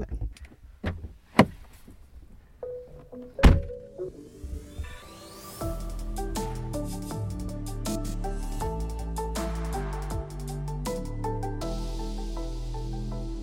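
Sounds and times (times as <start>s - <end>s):
steady tonal music: 2.6s - 13.4s
car door thunks as a person gets out of a car: 3.4s - 3.8s.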